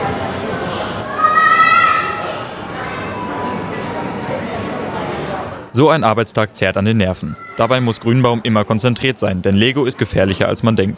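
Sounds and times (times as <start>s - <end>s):
many children's voices in indoor crowd noise: 0.0s - 5.7s, 7.0s - 10.9s
child's loud high-pitched shriek: 1.0s - 2.4s, 7.4s - 7.8s
speech: 5.8s - 10.9s.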